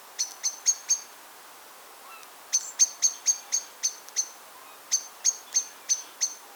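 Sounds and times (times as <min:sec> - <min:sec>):
common blackbird giving sharp high-pitched chinking calls: 0:00.2 - 0:01.1, 0:02.0 - 0:06.4.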